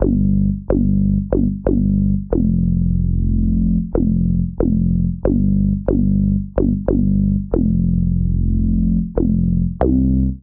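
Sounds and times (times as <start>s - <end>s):
hang bassline in G minor: 0.0s - 10.4s.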